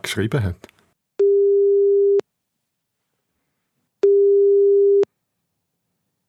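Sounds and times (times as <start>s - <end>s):
speech: 0.1s - 0.7s
telephone ringing tone reaching an answering machine: 1.2s - 2.2s, 4.0s - 5.1s.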